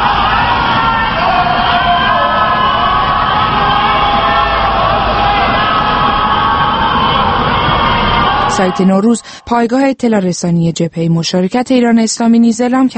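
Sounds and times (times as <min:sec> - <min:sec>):
large crowd of protesters chanting and shouting in the streets of Tehran at night: 0:00.0 - 0:09.4
speech: 0:08.6 - 0:12.9.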